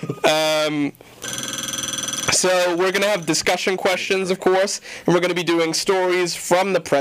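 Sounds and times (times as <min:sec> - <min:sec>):
speech: 0:00.0 - 0:01.4, 0:02.4 - 0:06.9
telephone ringing in a radio station studio: 0:01.2 - 0:03.6.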